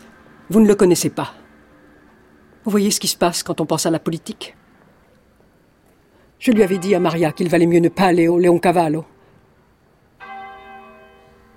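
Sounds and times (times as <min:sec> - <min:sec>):
speech: 0:00.5 - 0:01.4, 0:02.6 - 0:04.6, 0:06.4 - 0:09.1
single church bell stroke: 0:06.5 - 0:09.4, 0:10.2 - 0:11.5.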